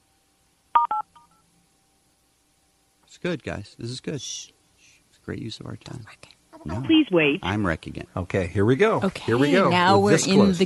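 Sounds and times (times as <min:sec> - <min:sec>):
touch-tone telephone keypad beeps as zero is pressed in an automated menu: 0:00.8 - 0:01.1
speech: 0:03.2 - 0:04.6, 0:05.3 - 0:10.6.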